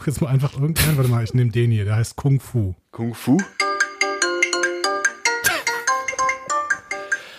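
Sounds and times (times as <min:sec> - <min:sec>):
speech: 0:00.0 - 0:03.6
bright electronic phone ringtone melody: 0:03.4 - 0:07.3.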